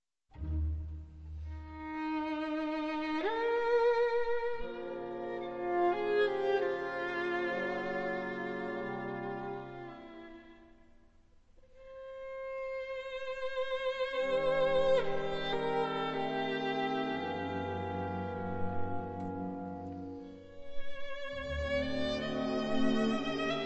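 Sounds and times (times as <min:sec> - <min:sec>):
slow violin: 0:00.3 - 0:11.0, 0:11.6 - 0:23.6.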